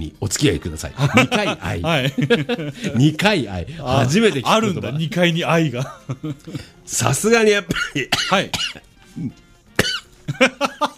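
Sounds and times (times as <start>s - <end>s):
speech: 0.0s - 9.4s, 10.3s - 10.9s
laughter: 1.0s - 3.2s, 5.7s - 6.7s, 10.2s - 10.9s
person spluttering coughs after choking: 7.7s - 10.1s.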